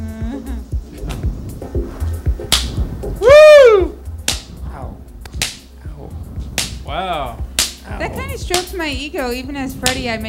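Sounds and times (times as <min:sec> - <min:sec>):
dull rhythmic low thumps: 0:00.0 - 0:10.2
whip crack: 0:02.5 - 0:02.8, 0:04.2 - 0:04.6, 0:05.2 - 0:05.7, 0:06.6 - 0:06.8, 0:09.8 - 0:10.1
speech: 0:08.4 - 0:10.2.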